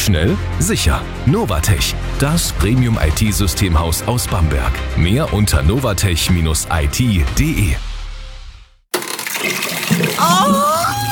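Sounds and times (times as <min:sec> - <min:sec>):
speech: 0:00.1 - 0:07.9
water gushing into an overflowing sink and blocked toilet: 0:09.0 - 0:11.1.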